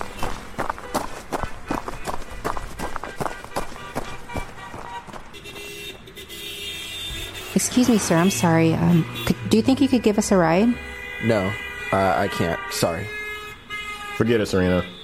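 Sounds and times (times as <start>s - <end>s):
jogging footsteps slapping the pavement: 0.0s - 6.1s
traffic rumbling: 0.0s - 15.0s
sustained horn-like tone: 3.2s - 15.0s
speech: 7.6s - 13.2s, 14.2s - 15.0s.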